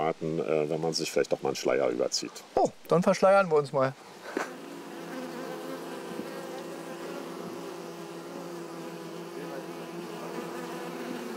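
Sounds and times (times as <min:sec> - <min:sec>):
speech: 0:00.1 - 0:04.5
many honeybees buzzing around an open hive: 0:04.1 - 0:11.3.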